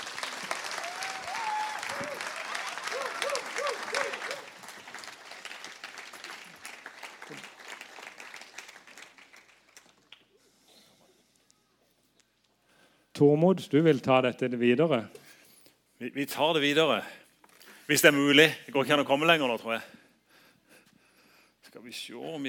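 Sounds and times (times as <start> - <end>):
crowd applauding: 0.0 - 10.3
speech: 13.2 - 15.2, 16.0 - 17.2, 17.9 - 20.0.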